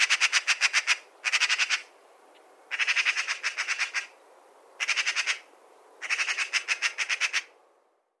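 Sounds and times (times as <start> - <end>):
Eurasian magpie Pica pica giving rattling chatter: 0.0 - 1.9, 2.7 - 4.1, 4.8 - 7.5.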